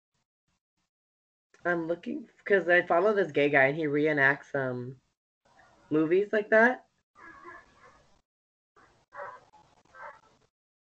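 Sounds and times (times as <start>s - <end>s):
speech: 1.6s - 5.0s, 5.9s - 6.8s
neighbor's dog barking: 7.2s - 8.1s, 8.8s - 10.4s.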